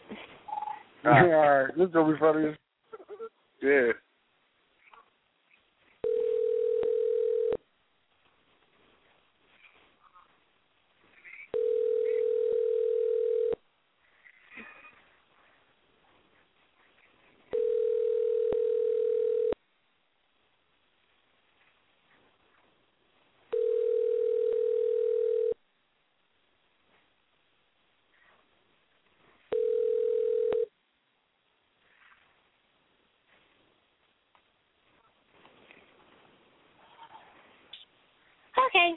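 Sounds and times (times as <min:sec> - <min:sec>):
speech: 0:01.0 - 0:02.6, 0:03.6 - 0:04.0
telephone ringing tones after a number is dialed: 0:06.0 - 0:07.6, 0:11.5 - 0:13.6, 0:17.5 - 0:19.6, 0:23.5 - 0:25.6, 0:29.5 - 0:30.7.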